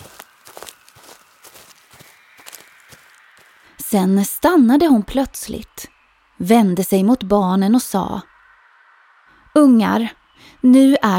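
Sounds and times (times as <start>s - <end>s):
brisk footsteps of a grandmother walking with a lively stride: 0.0s - 3.8s
speech: 3.9s - 8.3s, 9.6s - 11.1s.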